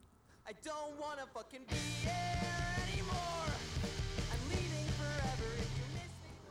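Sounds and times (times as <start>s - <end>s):
lone voice singing a rock song: 0.5s - 6.5s
full rock band with driving bass and guitars: 1.7s - 6.2s.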